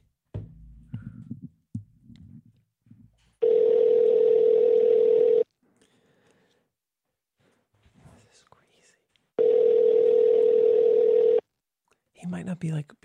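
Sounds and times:
telephone ringback tone: 0:03.4 - 0:05.4, 0:09.4 - 0:11.4
speech: 0:12.6 - 0:13.0.

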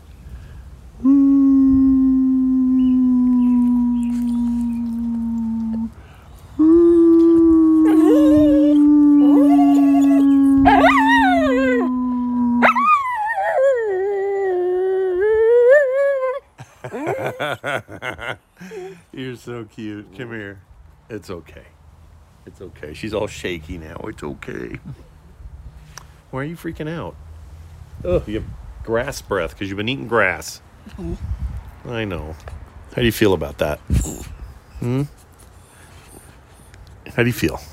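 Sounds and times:
dog howling: 0:01.4 - 0:06.0, 0:06.7 - 0:16.4
speech: 0:19.4 - 0:21.8, 0:22.5 - 0:25.1, 0:26.4 - 0:27.2, 0:28.0 - 0:31.3, 0:31.9 - 0:34.2, 0:34.8 - 0:35.2, 0:37.2 - 0:37.7.

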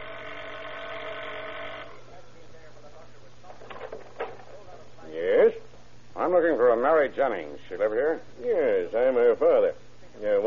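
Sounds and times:
electric front-door doorbell buzzing at a house: 0:00.0 - 0:02.0
speech: 0:06.3 - 0:10.4.

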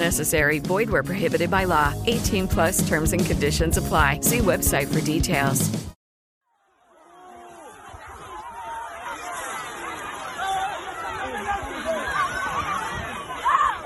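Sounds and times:
speech: 0:00.0 - 0:05.9
crowd of teenagers brawling, shouting and yelling: 0:06.6 - 0:13.8.

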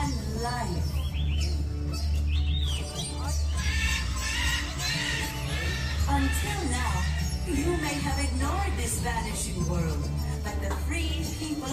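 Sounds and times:
birds chirping: 0:00.0 - 0:11.7.

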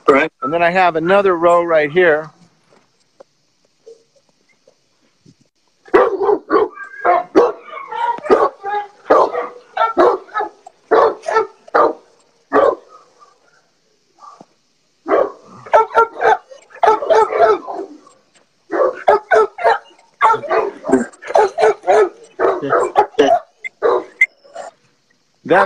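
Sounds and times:
speech: 0:00.1 - 0:02.4
several dogs barking in rows of kennels: 0:05.8 - 0:24.8.

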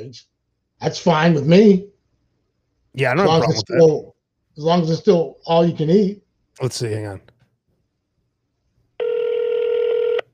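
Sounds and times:
speech: 0:00.0 - 0:01.9, 0:03.0 - 0:07.3
cell phone electronic ring tone: 0:09.0 - 0:10.3.

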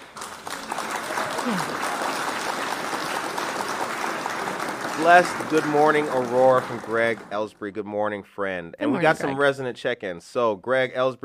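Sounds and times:
crowd applause: 0:00.0 - 0:07.5
speech: 0:01.4 - 0:01.9, 0:05.0 - 0:11.2.

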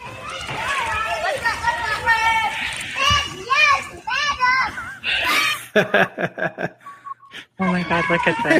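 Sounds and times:
crowd of young children chanting and shouting outdoors: 0:00.0 - 0:05.7, 0:07.5 - 0:08.5
laughter: 0:04.7 - 0:07.5
speech: 0:05.8 - 0:06.8, 0:07.6 - 0:08.5.

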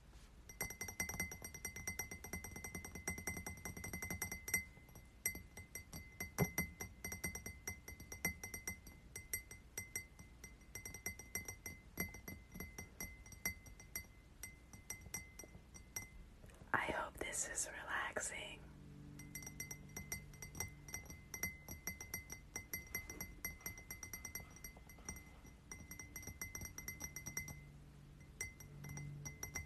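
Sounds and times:
tapping on a glass: 0:00.5 - 0:16.2, 0:19.2 - 0:29.6
speech: 0:16.8 - 0:18.6.

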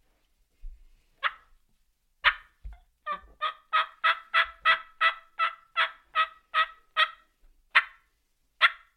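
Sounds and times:
turkey call yelps: 0:01.2 - 0:01.5, 0:02.2 - 0:08.9.

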